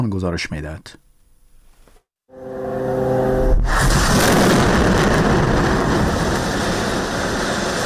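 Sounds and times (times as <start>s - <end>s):
speech: 0.0s - 1.0s
droning tonal fighter jet engine roar: 2.6s - 7.8s
heavy explosion blast: 3.0s - 7.8s.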